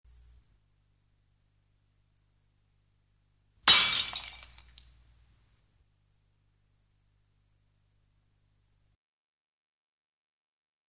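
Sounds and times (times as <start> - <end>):
glass breaking: 3.7 - 4.8.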